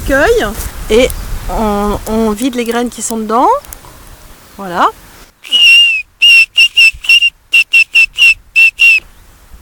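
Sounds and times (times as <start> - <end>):
speech: 0.1 - 3.7, 4.6 - 5.6
shrill breathy whistle blown through a hollow plant stem: 5.4 - 9.1.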